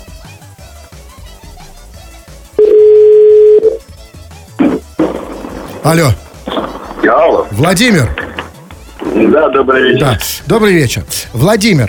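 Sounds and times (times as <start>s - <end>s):
telephone dial tone as a call is placed: 2.6s - 3.8s
speech: 5.8s - 6.2s, 7.1s - 8.2s, 9.2s - 11.8s.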